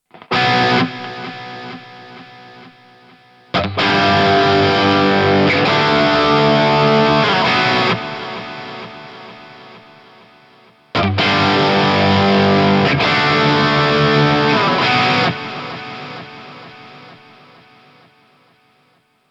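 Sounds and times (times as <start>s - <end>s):
Plexi lead guitar with ping-pong delay: 0.1s - 18.7s.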